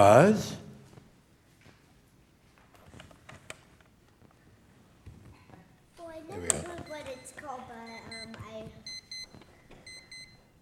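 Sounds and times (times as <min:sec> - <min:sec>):
speech: 0:00.0 - 0:00.6
alarm clock beeping: 0:06.6 - 0:10.5.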